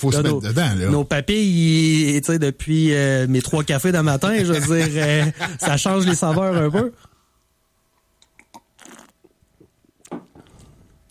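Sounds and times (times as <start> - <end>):
speech: 0.0 - 7.1
laughter: 4.2 - 7.0
wet lip smacks: 8.2 - 9.4
swallow: 8.2 - 10.8
person sipping beer from a glass: 8.2 - 11.1.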